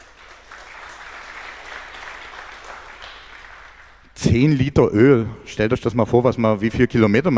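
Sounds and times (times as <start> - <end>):
crowd clapping: 0.0 - 4.2
speech: 4.2 - 7.3.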